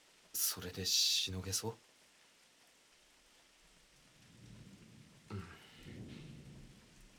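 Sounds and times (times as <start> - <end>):
steady heavy rain in a storm: 0.0 - 7.1
speech: 0.4 - 1.9
sharp thunderclap: 4.2 - 7.1.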